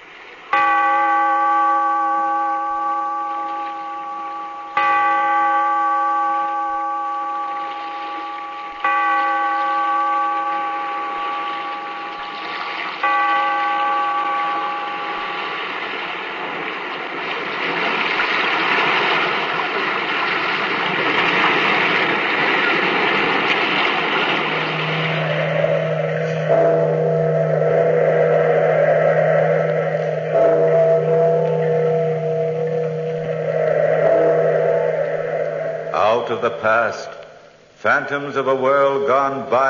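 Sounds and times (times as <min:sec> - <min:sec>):
steady hiss: 0:00.0 - 0:06.0, 0:06.6 - 0:39.6
deep resonant bell tolling: 0:00.5 - 0:16.7, 0:23.4 - 0:37.5
speech: 0:36.4 - 0:37.1, 0:37.8 - 0:39.6.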